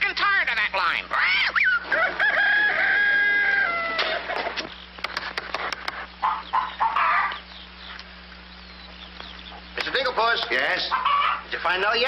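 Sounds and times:
hens clucking: 0.3 - 12.0
speech: 0.9 - 1.3, 11.6 - 12.0
rooster crowing: 1.5 - 4.4, 6.2 - 7.4, 10.9 - 11.5
sharp clicks: 4.6 - 6.0.

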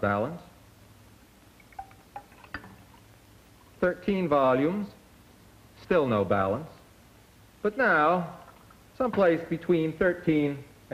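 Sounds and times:
speech: 0.0 - 0.5, 3.8 - 5.0, 5.8 - 6.8, 7.6 - 8.4, 9.0 - 10.9
water trickling into a container: 1.5 - 3.2, 8.4 - 8.9.

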